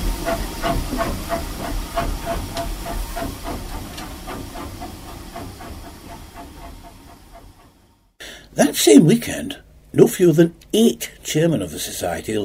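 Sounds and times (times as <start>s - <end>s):
faint rail clanks: 0.0s - 7.9s
steam locomotive hissing while backing to couple: 0.0s - 8.9s
speech: 0.2s - 2.5s, 8.8s - 12.4s.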